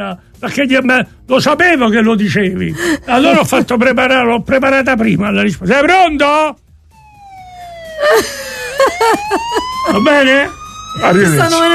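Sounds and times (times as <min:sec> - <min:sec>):
speech: 0:00.0 - 0:06.6, 0:08.0 - 0:11.7
ambulance and police car siren wailing: 0:06.8 - 0:11.7.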